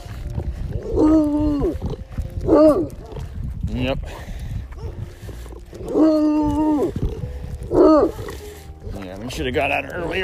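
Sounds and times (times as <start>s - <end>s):
dogs howling during strong storms: 0.5s - 3.4s, 4.8s - 9.4s
speech: 3.8s - 4.4s, 9.3s - 10.2s.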